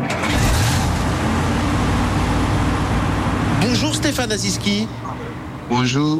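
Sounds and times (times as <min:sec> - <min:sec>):
moving bus engine rumble: 0:00.1 - 0:06.1
road noise inside a moving bus in Washington: 0:00.1 - 0:06.1
speech: 0:04.2 - 0:06.1.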